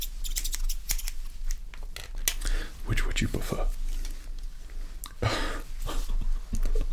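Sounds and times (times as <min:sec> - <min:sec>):
traditional barber's scissors snipping during a haircut: 0:00.0 - 0:01.2
low hum: 0:00.0 - 0:06.9.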